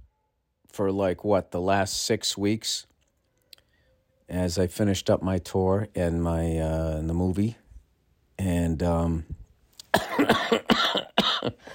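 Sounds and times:
speech: 0:00.8 - 0:02.9, 0:04.3 - 0:07.6, 0:08.4 - 0:09.4
man with a persistent cough coughing: 0:09.9 - 0:11.7.

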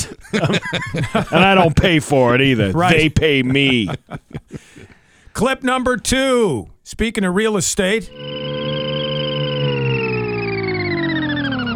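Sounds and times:
laughter: 0:00.0 - 0:05.0
speech: 0:00.4 - 0:08.9
buzzy electronic tone sweeping downward in pitch: 0:08.1 - 0:11.7.

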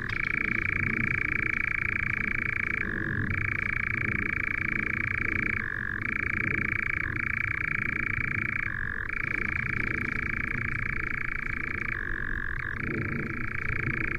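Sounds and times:
European nightjar churring: 0:00.0 - 0:14.1.

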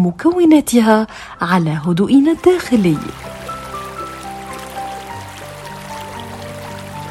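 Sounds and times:
speech: 0:00.0 - 0:03.3
soft sustained musical tones: 0:01.6 - 0:07.1
stream water flowing: 0:02.2 - 0:07.1.

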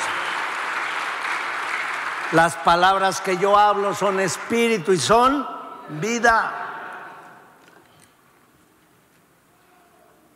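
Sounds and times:
congregation applauding: 0:00.0 - 0:05.3
speech: 0:02.3 - 0:06.6.

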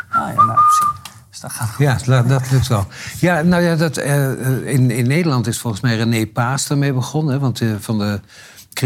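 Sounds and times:
person whistling one short steady note: 0:00.0 - 0:01.1
speech: 0:01.4 - 0:08.8
breathy hiss: 0:02.8 - 0:03.3.

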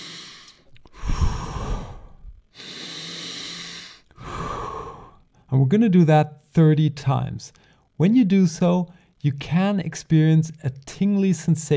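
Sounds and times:
deep breathing from a breathing exercise for energy and mood: 0:00.0 - 0:05.5, 0:07.6 - 0:08.0
speech: 0:05.5 - 0:11.7.

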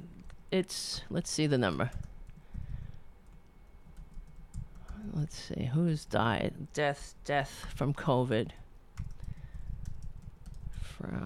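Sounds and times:
speech: 0:00.5 - 0:02.1, 0:05.1 - 0:08.6, 0:11.0 - 0:11.2
rapid typing on a computer keyboard: 0:01.8 - 0:05.0, 0:09.0 - 0:10.8.

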